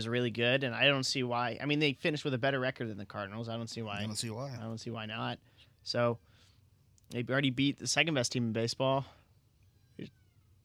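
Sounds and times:
speech: 0.0 - 6.3, 7.1 - 9.2, 10.0 - 10.2
cat meowing: 9.8 - 10.5.

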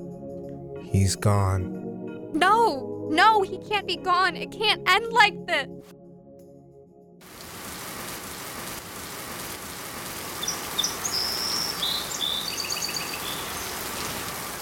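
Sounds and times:
speech: 0.9 - 6.0
steady rain: 7.2 - 14.6
faint high bird chirps: 10.4 - 13.8.

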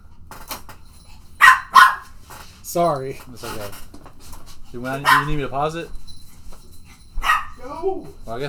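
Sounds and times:
dog barking loudly: 1.4 - 2.1, 5.0 - 5.5, 7.2 - 7.7
dog yelping softly: 1.4 - 2.1, 5.0 - 5.4, 7.2 - 7.9
speech: 2.7 - 4.0, 4.7 - 6.0, 7.7 - 8.4.

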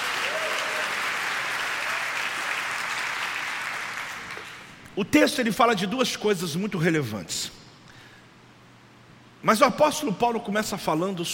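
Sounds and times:
audience at a night church service applauding: 0.0 - 4.8
speech: 5.0 - 7.6, 9.4 - 11.3.

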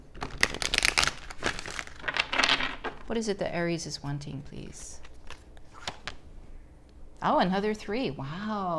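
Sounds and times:
tarot cards being flicked and shuffled during a reading: 0.2 - 3.0, 5.0 - 6.2
speech: 3.1 - 5.1, 7.2 - 8.7.

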